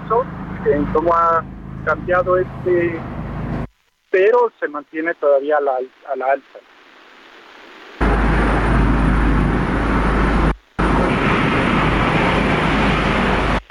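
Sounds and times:
helicopter flying outside the window: 0:00.0 - 0:03.7, 0:08.0 - 0:13.6
speech: 0:00.1 - 0:03.2, 0:04.2 - 0:06.7.

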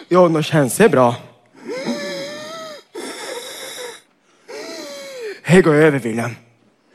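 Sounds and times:
speech: 0:00.1 - 0:01.3, 0:05.5 - 0:06.4
heavy rasping wheezy breaths with a whistling tone: 0:01.5 - 0:05.5.

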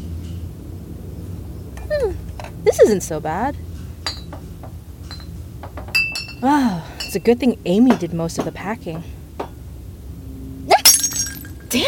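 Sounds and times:
speech: 0:02.7 - 0:03.7, 0:06.4 - 0:09.2
drinking glass hitting the floor and shattering: 0:04.0 - 0:06.4, 0:10.8 - 0:11.7
glass shards tinkling and scattering: 0:04.0 - 0:07.3, 0:10.8 - 0:11.8.

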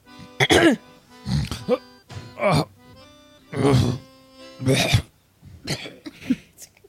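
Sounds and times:
person clearing throat: 0:00.3 - 0:02.7, 0:03.5 - 0:06.5.

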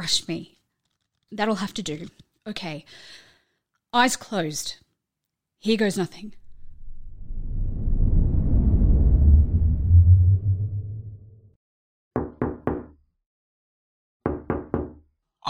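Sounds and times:
speech: 0:00.0 - 0:00.6, 0:01.3 - 0:03.2, 0:03.9 - 0:04.8, 0:05.6 - 0:06.4
deep rumbling whoosh: 0:06.3 - 0:11.6
woman knocking on a window: 0:12.2 - 0:13.0, 0:14.2 - 0:15.0.

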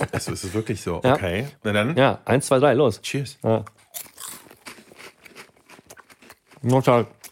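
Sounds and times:
laughter: 0:00.0 - 0:00.9
speech: 0:00.0 - 0:04.1, 0:06.6 - 0:07.2
crunchy chewing of milk-chocolate-coated mini corn chips: 0:03.6 - 0:07.3.

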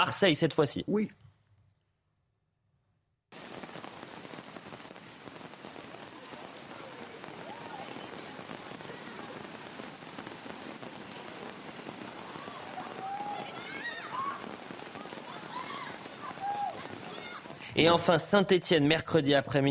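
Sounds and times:
speech: 0:00.0 - 0:01.3, 0:17.8 - 0:19.6
heavy rain pouring down: 0:03.3 - 0:18.4.

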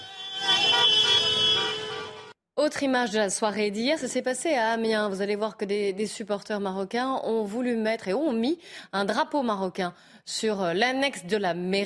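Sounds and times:
car horns honking in celebration: 0:00.0 - 0:02.4
speech: 0:02.6 - 0:11.8.

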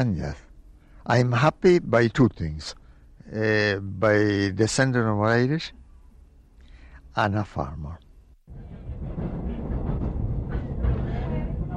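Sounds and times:
speech: 0:00.0 - 0:05.8, 0:07.2 - 0:08.7
train rumbling along rails: 0:08.5 - 0:11.7.

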